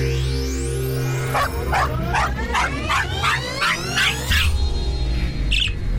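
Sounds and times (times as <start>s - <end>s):
steady droning background: 0.0s - 5.9s
dog barking: 1.3s - 4.5s.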